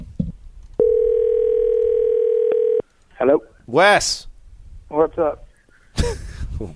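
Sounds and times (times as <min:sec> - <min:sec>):
telephone dial tone: 0:00.8 - 0:02.8
speech: 0:03.2 - 0:04.3, 0:04.9 - 0:05.4, 0:06.0 - 0:06.7
laughter: 0:05.7 - 0:06.7.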